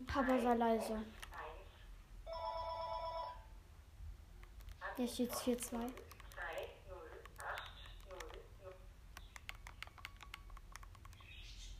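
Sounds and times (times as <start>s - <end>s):
speech: 0.1s - 1.2s, 5.0s - 6.1s
faint electronic telephone ring in a home: 2.3s - 3.4s.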